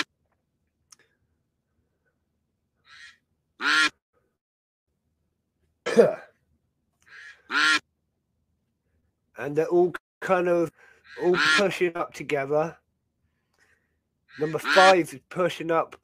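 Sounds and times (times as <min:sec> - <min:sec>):
duck quacking during a duck race: 0:02.8 - 0:04.0, 0:07.1 - 0:07.8, 0:11.0 - 0:11.8, 0:14.3 - 0:15.0
speech: 0:06.0 - 0:06.2, 0:09.4 - 0:12.8, 0:14.4 - 0:16.0
soft short duck calls: 0:11.0 - 0:11.6, 0:14.3 - 0:14.9.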